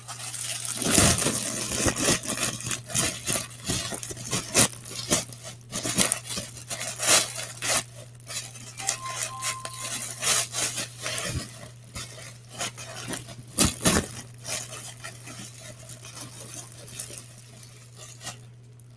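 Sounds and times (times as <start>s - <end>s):
baguette packaging crinkling and tearing: 0.0s - 18.9s
low steady hum: 8.2s - 10.2s.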